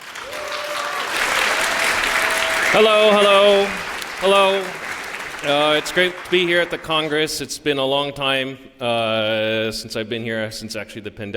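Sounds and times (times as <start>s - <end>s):
audience applause at a congress: 0.0s - 7.3s
speech: 2.7s - 4.8s, 5.4s - 11.3s.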